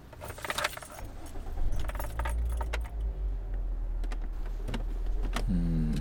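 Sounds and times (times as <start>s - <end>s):
car engine starting and rumbling: 0.0s - 5.9s
keys jangling: 0.1s - 3.1s.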